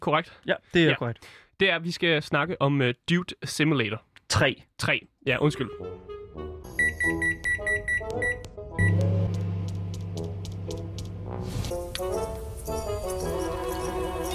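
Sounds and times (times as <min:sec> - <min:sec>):
speech: 0:00.0 - 0:07.2
video game trailer music: 0:05.2 - 0:14.3
short electronic beeps: 0:06.8 - 0:09.0
microwave oven humming: 0:08.8 - 0:10.6.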